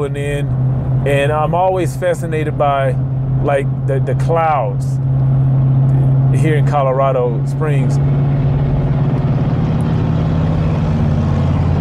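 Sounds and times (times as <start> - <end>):
speech: 0.0 - 5.4, 6.3 - 8.6
big pickup truck driving past on a Colorado Springs street: 0.0 - 11.7.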